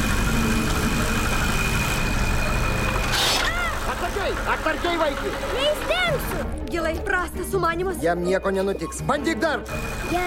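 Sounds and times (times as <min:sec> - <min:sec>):
spinning propeller inside an aquarium filter whirring: 0:00.0 - 0:06.6
speech: 0:04.3 - 0:10.2.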